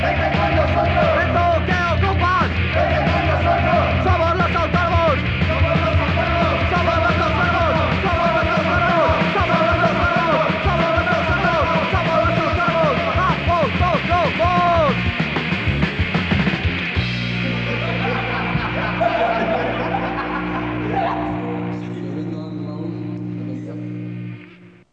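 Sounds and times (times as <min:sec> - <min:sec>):
hardcore punk song with raw shouted vocals: 0:00.0 - 0:21.7
pounding drums: 0:00.0 - 0:21.8
distorted guitars: 0:00.0 - 0:24.9
laughter: 0:02.8 - 0:04.8, 0:17.4 - 0:23.2.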